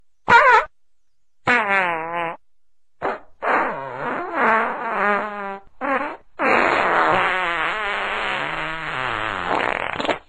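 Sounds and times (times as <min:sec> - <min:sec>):
person farting: 0:01.5 - 0:02.4, 0:03.0 - 0:10.2.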